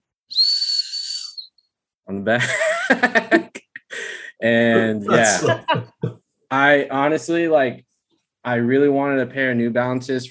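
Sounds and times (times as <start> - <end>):
shrill blast of a small whistle attached to a sneaker: 0.3 - 1.5
speech: 2.1 - 3.6, 4.4 - 10.2
laughter: 2.3 - 4.0, 4.6 - 6.1.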